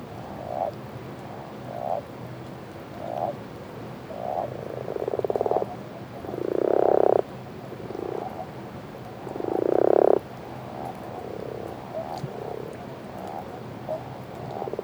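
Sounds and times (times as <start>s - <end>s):
common toads and common frogs calling in a breeding chorus on a lake at night: 4.1s - 8.5s, 9.2s - 14.8s.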